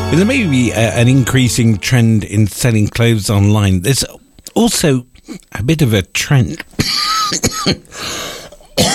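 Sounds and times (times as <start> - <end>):
speech: 0.1 - 8.9
person coughing on live radio: 6.8 - 7.9, 8.6 - 8.9.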